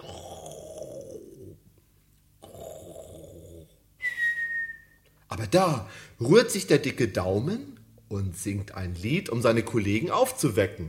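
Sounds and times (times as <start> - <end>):
person snoring with long rasping snores: 0.0 - 1.6, 2.4 - 3.8
bright steady whistle: 4.0 - 5.1
speech: 5.3 - 10.8.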